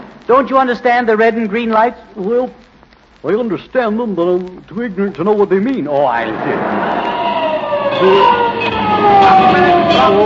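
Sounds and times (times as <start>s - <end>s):
speech: 0.3s - 7.0s, 8.0s - 10.2s
traffic noise: 6.1s - 10.2s
fire truck siren wailing: 6.3s - 10.2s.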